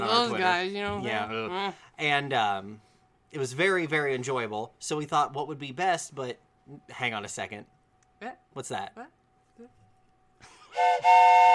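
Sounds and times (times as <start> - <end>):
speech: 0.0 - 9.8, 10.4 - 11.5
loud train whistle blasts: 10.8 - 11.5.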